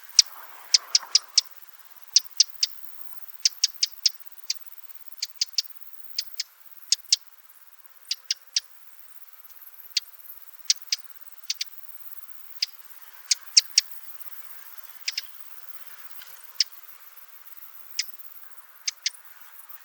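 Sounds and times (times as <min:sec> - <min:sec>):
Eurasian wren Troglodytes troglodytes sharp clicking tick notes: 0:00.0 - 0:19.8.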